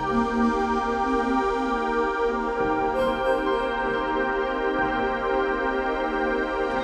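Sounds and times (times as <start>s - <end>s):
synth pad: 0.0s - 6.8s.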